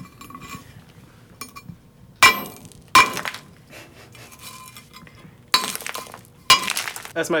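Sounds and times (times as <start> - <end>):
geologist's hammer smashing rock on a heavy iron plate: 2.2 - 3.5, 4.4 - 7.1.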